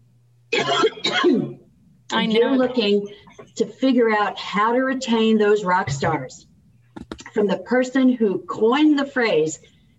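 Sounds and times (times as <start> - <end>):
person clearing throat: 0.5 - 1.6
person coughing: 0.5 - 1.6
speech: 2.1 - 6.5, 7.4 - 9.9.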